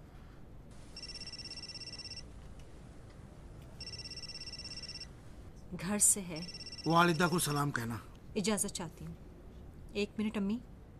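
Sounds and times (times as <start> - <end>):
phone ringing with high-pitched electronic trilling: 1.0 - 2.3, 3.8 - 5.1, 6.4 - 7.6
speech: 5.7 - 9.2, 10.0 - 10.7.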